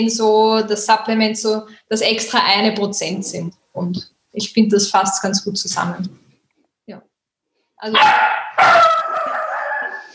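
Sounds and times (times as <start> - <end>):
speech: 0.0 - 6.2, 6.9 - 7.1, 7.8 - 9.2
dog barking and yowling: 7.9 - 10.1.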